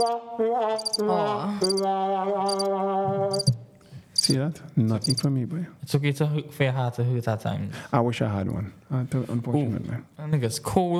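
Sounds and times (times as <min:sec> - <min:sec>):
speech: 0:00.0 - 0:03.5, 0:04.2 - 0:10.9
crickets chirping in short bursts: 0:00.8 - 0:01.0, 0:02.5 - 0:02.7, 0:03.3 - 0:03.6, 0:05.0 - 0:05.3.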